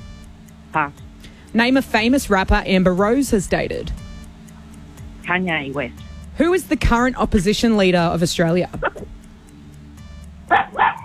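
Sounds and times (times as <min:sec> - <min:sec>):
low steady hum: 0:00.0 - 0:10.9
speech: 0:00.7 - 0:04.0, 0:05.3 - 0:09.1
dog barking: 0:08.8 - 0:09.1, 0:10.5 - 0:11.0.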